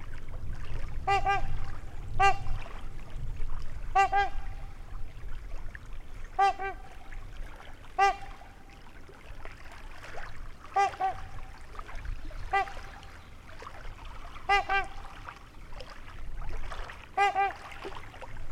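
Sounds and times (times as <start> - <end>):
trumpeter swan trumpeting near a lake in Wisconsin, USA: 1.1 - 1.6, 4.0 - 4.6, 6.4 - 7.0, 8.0 - 8.4, 10.7 - 11.4, 14.5 - 15.0, 17.2 - 17.6.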